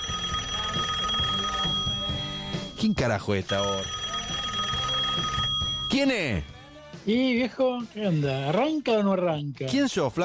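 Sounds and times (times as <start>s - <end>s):
telephone ringing with steady high electronic tone: 0.0s - 6.8s
speech: 2.8s - 4.0s, 5.9s - 6.5s, 7.1s - 10.2s.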